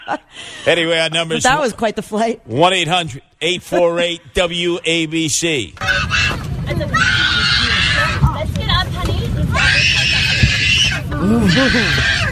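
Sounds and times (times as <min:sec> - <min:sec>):
speech: 0:00.1 - 0:07.6, 0:11.2 - 0:12.2
baby screaming high-pitched: 0:05.8 - 0:08.2, 0:09.5 - 0:12.2
chatter: 0:05.8 - 0:12.2.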